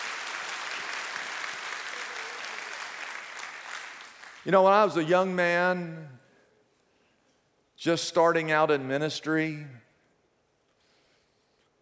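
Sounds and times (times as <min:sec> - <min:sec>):
audience applause: 0:00.0 - 0:04.5
speech: 0:04.4 - 0:06.2, 0:07.8 - 0:09.8.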